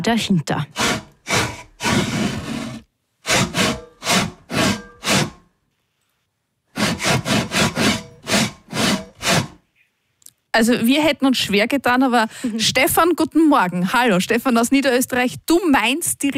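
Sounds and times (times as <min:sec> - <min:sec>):
speech: 0:00.0 - 0:01.0, 0:10.6 - 0:16.3
hand saw rasping through wood in a rhythmic pattern: 0:00.7 - 0:05.4, 0:06.7 - 0:09.6.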